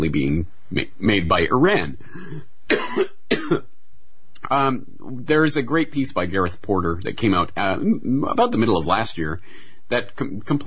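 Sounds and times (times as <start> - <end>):
speech: 0.0 - 3.6, 4.5 - 10.6
person clearing throat with something caught in it: 2.1 - 3.7.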